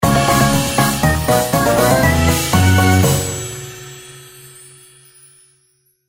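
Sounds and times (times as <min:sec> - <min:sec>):
epic win sound: 0:00.0 - 0:04.1.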